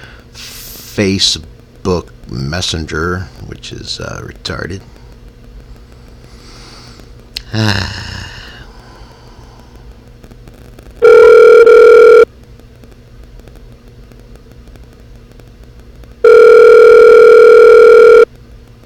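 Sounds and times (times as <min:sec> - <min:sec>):
speech: 0:01.0 - 0:04.9, 0:07.5 - 0:08.0
buzzing ringback tone of an outgoing phone call: 0:11.0 - 0:12.3, 0:16.2 - 0:18.3.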